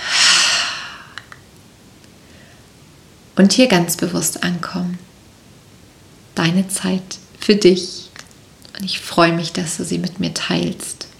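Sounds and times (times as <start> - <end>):
deep breathy exhalation during a guided relaxation exercise: 0.0 - 1.3
speech: 3.4 - 5.1, 6.4 - 8.0, 8.8 - 11.0.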